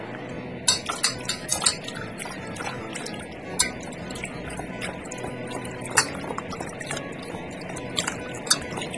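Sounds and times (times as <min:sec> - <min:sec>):
cold tap water running over blanched pork ribs: 0:00.0 - 0:08.9
clinks and knocks of pork ribs moving in a bowl or sink: 0:00.7 - 0:08.9.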